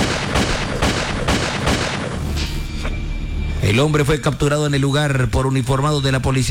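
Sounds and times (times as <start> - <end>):
gunshots: 0.0 - 2.4
dense noisy background: 0.0 - 6.5
speech: 3.7 - 6.5.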